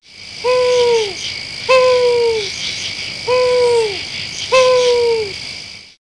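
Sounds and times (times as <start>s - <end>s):
owl giving downward-slurred hoots: 0.4s - 5.4s.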